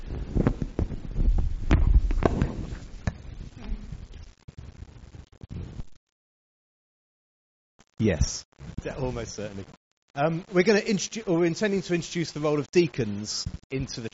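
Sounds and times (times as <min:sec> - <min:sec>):
heavy thumps and rustling bumps from a microphone being handled and swapped in a church: 0:00.0 - 0:05.9
speech: 0:08.0 - 0:14.1.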